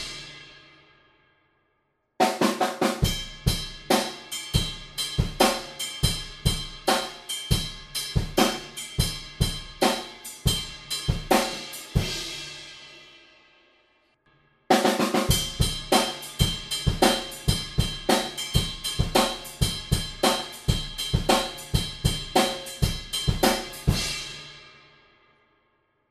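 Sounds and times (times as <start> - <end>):
rhythm beat: 2.3 - 12.1, 14.8 - 24.3.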